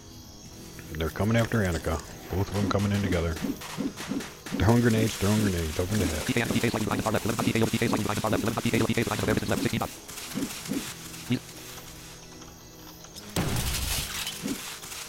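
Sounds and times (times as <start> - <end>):
speech: 0.9 - 11.5
excited commentary voice: 4.6 - 9.9
shield breaking in a video game: 13.4 - 15.0.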